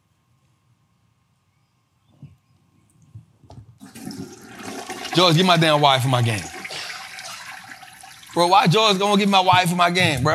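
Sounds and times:
toilet flush with thuds, gurgles and swirling water: 0:03.8 - 0:09.5
speech: 0:05.2 - 0:06.5, 0:08.4 - 0:10.3.

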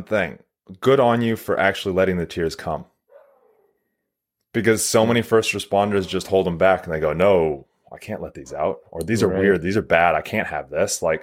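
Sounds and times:
speech: 0:00.0 - 0:02.9, 0:04.5 - 0:11.2
dog barking drawn-out: 0:03.1 - 0:03.8.

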